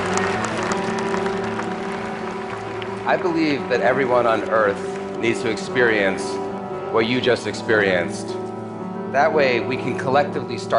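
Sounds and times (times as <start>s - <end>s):
large audience giving a standing ovation: 0.0s - 6.5s
speech: 3.1s - 8.4s, 9.1s - 10.7s.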